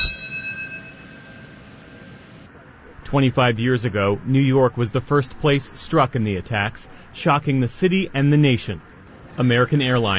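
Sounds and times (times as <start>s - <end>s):
single struck memorial bell ringing: 0.0s - 2.4s
speech: 3.1s - 10.1s.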